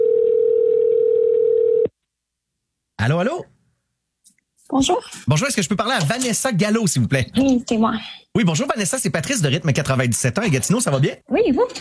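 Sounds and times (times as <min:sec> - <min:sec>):
ringback tone of a call placed from a cell phone: 0:00.0 - 0:01.9
speech: 0:03.0 - 0:03.5, 0:04.7 - 0:11.7.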